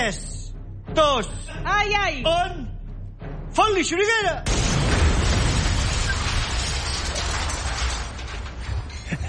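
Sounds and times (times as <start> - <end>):
speech: 0.1 - 0.3, 1.0 - 2.7, 3.5 - 4.9
explosive charge detonated by a car crossing a marked spot on a wall: 4.5 - 9.2.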